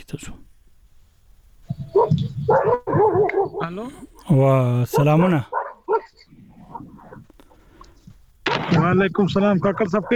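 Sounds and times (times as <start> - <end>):
speech: 0.0 - 0.6, 1.8 - 6.3, 8.7 - 10.1
dog barking: 1.8 - 3.9, 4.9 - 7.3, 9.5 - 10.1.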